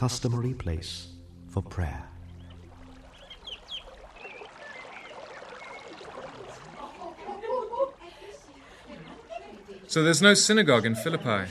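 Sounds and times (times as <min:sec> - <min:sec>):
speech: 0:00.0 - 0:02.1, 0:09.9 - 0:11.4
river water trickling and flowing outside the gates of Philippi in Macedonia: 0:01.2 - 0:10.3
bird-like chirp: 0:02.1 - 0:06.7
laughter: 0:06.4 - 0:11.4.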